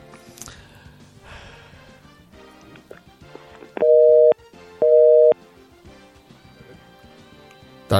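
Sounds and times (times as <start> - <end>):
telephone busy tone after dropped call: 3.8 - 5.4.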